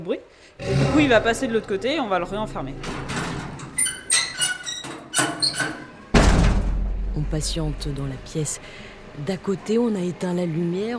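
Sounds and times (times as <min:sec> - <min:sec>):
speech: 0:00.0 - 0:03.1, 0:07.2 - 0:10.9
trap hatch creaking as it is opened: 0:02.8 - 0:05.9.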